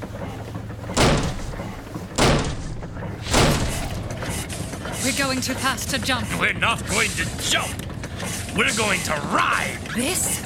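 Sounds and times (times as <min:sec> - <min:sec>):
constant low hum: 0:00.0 - 0:10.4
heavy booming blows on a door being kicked open: 0:00.9 - 0:04.2
speech: 0:05.0 - 0:10.4.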